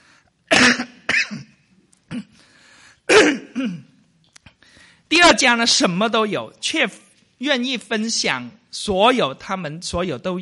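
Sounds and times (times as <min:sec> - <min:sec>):
person clearing throat: 0:00.5 - 0:02.4, 0:03.1 - 0:04.0
person coughing: 0:00.5 - 0:02.4, 0:03.1 - 0:04.0
speech: 0:05.2 - 0:10.4.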